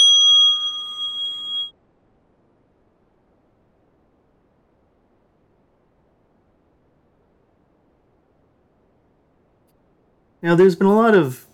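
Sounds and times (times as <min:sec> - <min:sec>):
meditation bell struck and ringing: 0:00.0 - 0:01.7
speech: 0:10.4 - 0:11.5.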